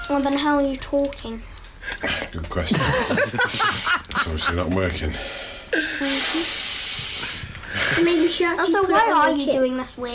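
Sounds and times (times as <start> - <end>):
speech: 0.1 - 6.6, 7.2 - 10.1
laughter: 2.7 - 5.0
loud strained raspy breathing through the nose: 5.1 - 8.2.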